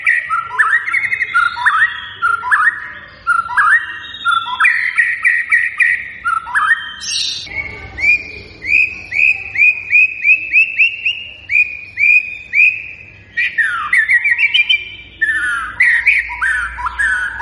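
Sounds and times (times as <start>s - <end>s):
White-rumped shama song: 0.0s - 17.4s.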